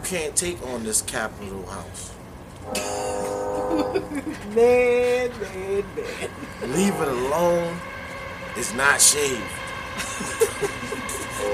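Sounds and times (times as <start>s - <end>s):
speech: 0.1s - 8.0s, 8.6s - 11.5s
train passing by: 1.6s - 11.5s
faint horn-like tone: 2.7s - 4.2s, 6.6s - 8.7s, 11.4s - 11.5s
laughter: 2.7s - 7.0s, 10.0s - 11.5s.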